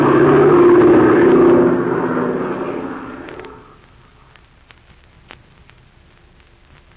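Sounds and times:
airplane engine roar during an aerial dogfight: 0.0 - 3.8.

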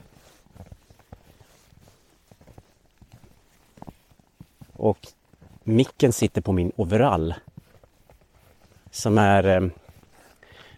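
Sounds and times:
footsteps trudging through deep snow in a forest: 0.0 - 10.7
speech: 4.8 - 7.5, 8.9 - 9.8.

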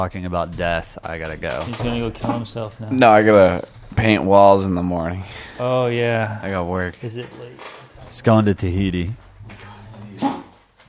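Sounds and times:
speech: 0.0 - 9.2
dog giving a harsh hacking cough as if choking: 10.1 - 10.6.

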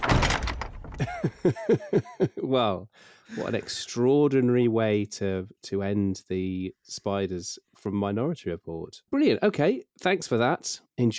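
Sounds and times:
door pushed shut with a heavy thunk: 0.0 - 1.2
laughter: 1.0 - 2.5
speech: 1.0 - 11.1.

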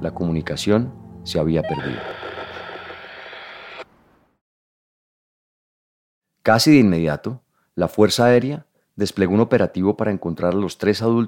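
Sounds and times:
speech: 0.0 - 2.2, 6.4 - 11.2
radio static hiss: 1.7 - 3.9.

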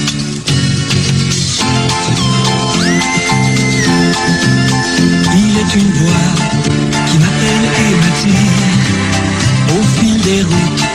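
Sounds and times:
bouncing bass line: 0.0 - 9.9
instrumental theme tune melody of a TV series: 0.2 - 10.0
high sustained tone sliding upward: 3.3 - 9.2.

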